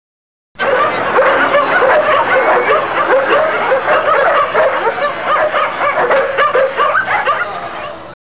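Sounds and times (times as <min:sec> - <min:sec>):
several dogs yapping and barking in an overlapping chorus: 0:00.6 - 0:08.1.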